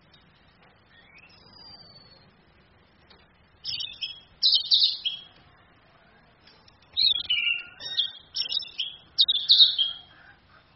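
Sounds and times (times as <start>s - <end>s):
female orange-headed thrush warbling song played from a phone: 0.1s - 2.4s, 3.6s - 5.4s, 6.9s - 10.7s.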